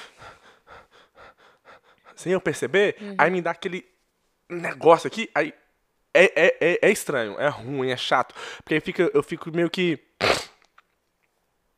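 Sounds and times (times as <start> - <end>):
person imitating quick shallow strained breathing under stress: 0.0 - 2.3, 8.4 - 8.7
speech: 2.2 - 10.4.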